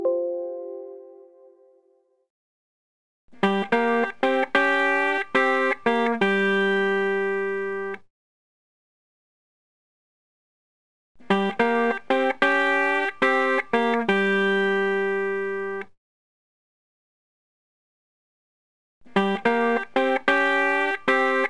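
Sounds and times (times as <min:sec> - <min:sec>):
guitar: 0:03.4 - 0:08.0, 0:11.2 - 0:15.8, 0:19.1 - 0:21.4.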